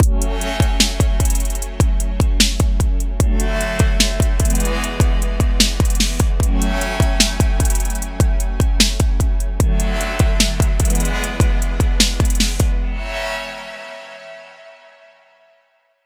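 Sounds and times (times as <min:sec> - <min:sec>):
fast hi-hat rolls in a hip hop trap beat: 0:00.0 - 0:12.8
deep dry kick drums in a hip hop trap beat: 0:00.0 - 0:12.9.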